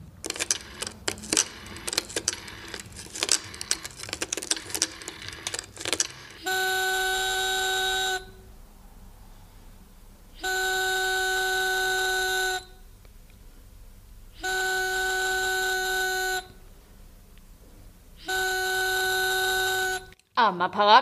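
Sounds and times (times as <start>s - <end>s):
antique telephone dial whirring and clicking: 0.0s - 7.3s
loud buzzing telephone ring tone: 0.2s - 8.5s, 10.4s - 12.8s, 14.4s - 16.6s, 18.2s - 20.2s.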